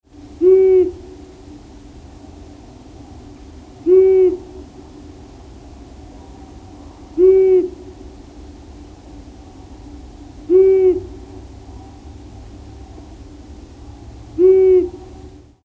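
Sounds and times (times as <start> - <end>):
faint steady low hum: 0.1 - 15.6
long-eared owl Asio otus giving low soft hoots: 0.4 - 1.2, 3.8 - 4.7, 7.1 - 8.0, 10.4 - 11.4, 14.3 - 15.4.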